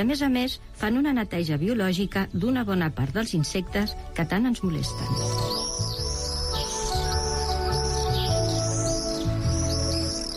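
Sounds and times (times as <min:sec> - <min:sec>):
speech: 0:00.0 - 0:05.5
common swift calls: 0:03.3 - 0:10.3.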